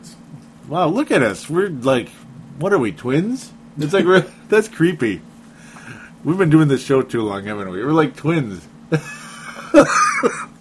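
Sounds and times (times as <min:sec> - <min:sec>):
speech: 0:00.7 - 0:05.3, 0:05.9 - 0:10.5
laughter: 0:03.8 - 0:04.4, 0:08.9 - 0:10.5
person coughing harshly in a coughing fit: 0:09.8 - 0:10.5.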